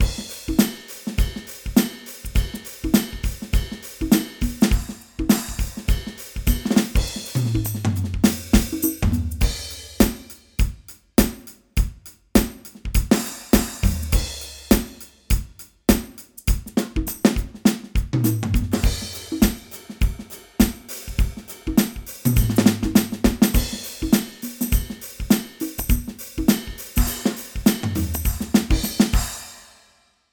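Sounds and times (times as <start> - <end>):
standard drum: 0.0 - 29.8.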